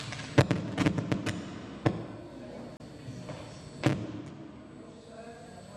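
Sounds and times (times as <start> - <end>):
microphone thumping as it is pulled from its stand: 0.1 - 2.3, 3.3 - 4.7.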